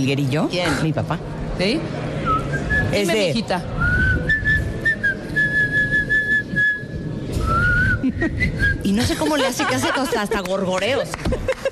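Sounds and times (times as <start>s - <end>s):
speech: 0.0s - 2.1s, 2.9s - 3.8s, 8.2s - 11.6s
busy background of low rumbling noise: 3.6s - 8.9s
person whistling a melody: 3.8s - 8.9s
laughter: 7.9s - 11.7s.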